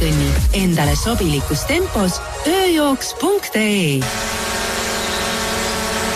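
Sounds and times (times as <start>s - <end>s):
speech: 0.1s - 4.5s
drone buzzing in flight: 0.9s - 6.1s.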